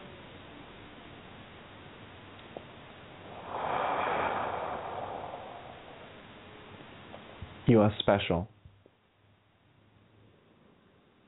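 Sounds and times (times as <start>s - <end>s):
breathing in through nose, out through mouth: 3.2s - 6.7s
speech: 7.7s - 8.6s.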